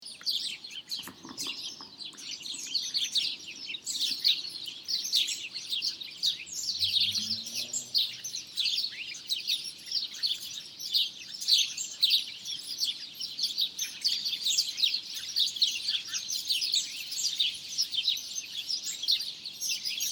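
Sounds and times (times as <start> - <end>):
several sparrows calling at a roost: 0.0 - 20.1.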